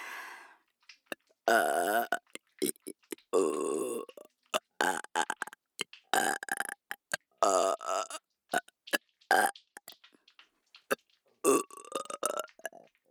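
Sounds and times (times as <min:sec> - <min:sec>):
loud close-up burps: 0:01.5 - 0:05.6, 0:06.1 - 0:08.7, 0:11.4 - 0:12.8.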